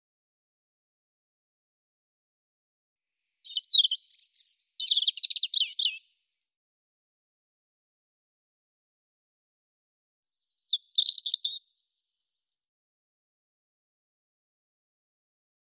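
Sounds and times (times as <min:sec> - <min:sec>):
European robin song: 0:03.4 - 0:06.3, 0:10.3 - 0:12.5.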